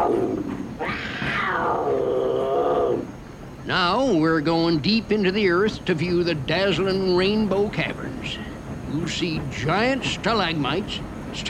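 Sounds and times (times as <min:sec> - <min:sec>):
mountain lion roaring: 0:00.0 - 0:03.1
steady low rumbling background: 0:00.0 - 0:11.4
speech: 0:03.7 - 0:11.4.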